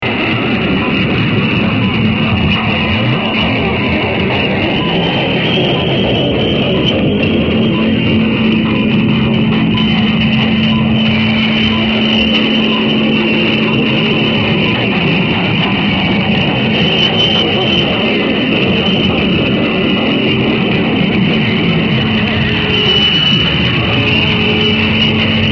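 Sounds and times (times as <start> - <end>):
radio time signal pips from Ecuador: 0.0 - 25.5.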